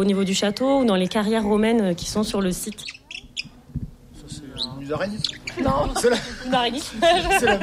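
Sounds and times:
speech: 0.0s - 3.0s, 4.9s - 7.6s
hawfinch calling: 2.5s - 3.6s, 4.5s - 5.9s
laughter: 5.4s - 7.6s.

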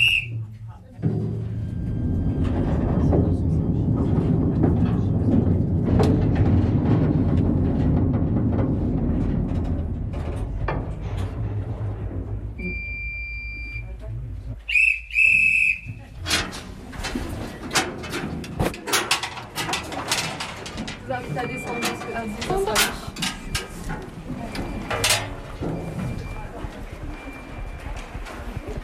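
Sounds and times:
irregular clattering and clacking of wheels on rails: 0.0s - 28.8s
small mine train rumbling through a slate mine gallery: 0.0s - 28.8s.

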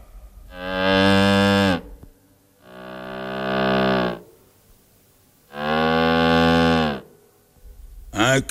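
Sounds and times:
instrument imitating a cow mooing: 0.5s - 2.0s, 2.6s - 4.4s, 5.5s - 7.1s.

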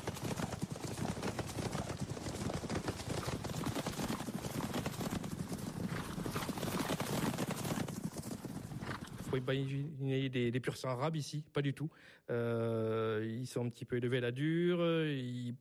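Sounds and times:
hooves of small rustic mountain horses clip-clopping: 0.0s - 9.3s
speech: 9.3s - 15.5s.

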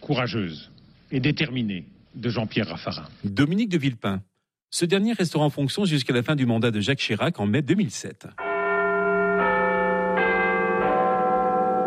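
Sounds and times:
speech: 0.1s - 8.4s
large deep clock tower bell striking the hour: 8.4s - 11.8s.

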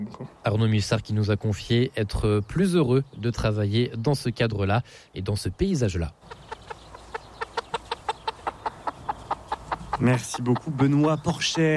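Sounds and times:
speech: 0.1s - 6.5s, 10.0s - 11.7s
chicken clucking: 6.2s - 11.7s.

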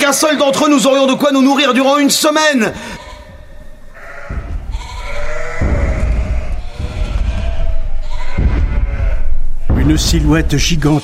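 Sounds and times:
speech: 0.1s - 3.0s, 9.9s - 11.0s
herd of sheep bleating: 2.8s - 9.8s
low rumble: 2.9s - 10.8s.

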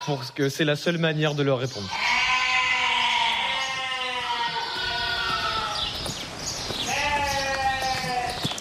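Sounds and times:
speech: 0.1s - 2.2s
two-week-old piglets squealing in an enclosure: 1.9s - 5.9s, 6.9s - 8.4s
soft knocks and rustling of pigs moving: 2.0s - 8.6s.

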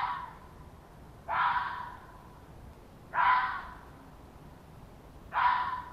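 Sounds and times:
red fox giving hoarse breathy yelping barks: 0.0s - 0.5s, 1.2s - 2.2s, 3.1s - 3.9s, 5.3s - 5.9s.

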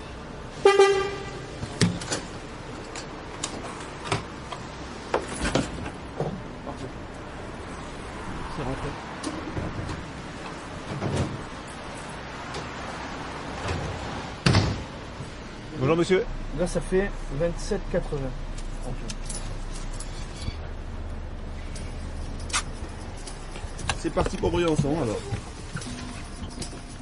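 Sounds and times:
low street rumble: 0.0s - 26.9s
speech: 16.0s - 19.2s, 24.0s - 25.5s
bus pulling in with a tonal squeal: 20.0s - 20.7s.

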